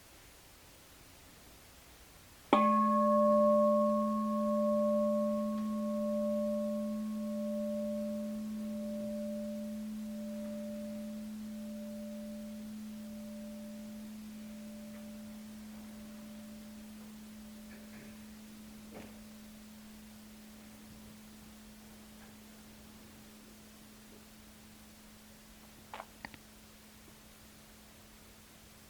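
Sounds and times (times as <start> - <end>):
meditation bell struck and ringing: 2.5 - 20.6.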